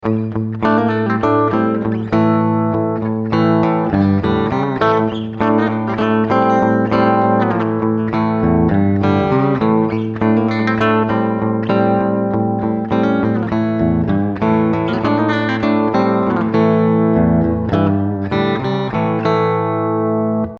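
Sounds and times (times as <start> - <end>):
clean electric guitar with humbucker pickup: 0.0 - 20.5.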